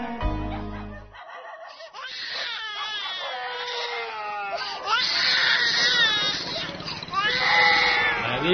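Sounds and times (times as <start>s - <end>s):
laughter: 0.3s - 3.3s
child crying at home: 1.7s - 8.3s.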